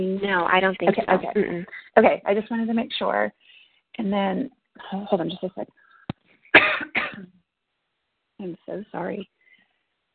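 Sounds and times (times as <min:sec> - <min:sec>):
speech: 0:00.0 - 0:03.4, 0:04.0 - 0:05.8, 0:08.4 - 0:09.4
sick person coughing harshly: 0:06.6 - 0:07.3.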